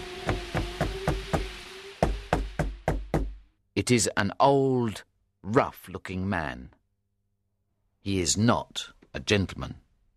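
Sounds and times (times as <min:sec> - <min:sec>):
firm knocks on a door: 0:00.2 - 0:03.5
speech: 0:03.8 - 0:06.8, 0:08.0 - 0:09.8.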